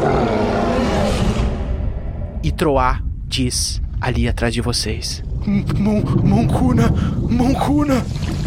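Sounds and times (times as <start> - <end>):
huge werewolf-like monster roaring: 0.0 - 2.4
speech: 2.4 - 8.3.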